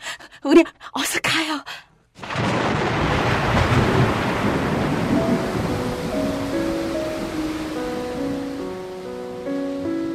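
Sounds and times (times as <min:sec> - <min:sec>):
speech: 0:00.4 - 0:00.8
loud rolling thunder: 0:02.2 - 0:08.4
heavy pouring rain: 0:02.2 - 0:10.1
soft melodic tones: 0:05.1 - 0:10.1.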